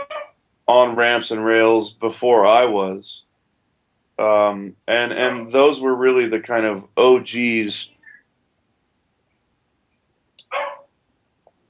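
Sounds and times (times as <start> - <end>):
speech: 0.7 - 3.3, 4.2 - 8.0
dog barking: 5.2 - 5.5, 10.5 - 10.9.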